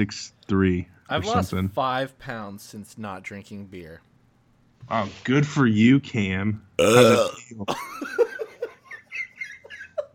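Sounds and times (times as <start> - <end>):
speech: 0.0 - 4.1, 4.8 - 8.3
loud drawn-out burp: 6.8 - 7.5
people giggling and chuckling: 7.7 - 10.1.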